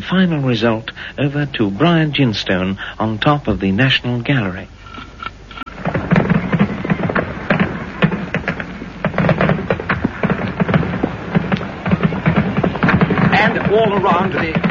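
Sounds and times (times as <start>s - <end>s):
speech: 0.0s - 4.8s
bird-scaring mixture exploding around the cornices of St. Martin's: 4.9s - 14.6s.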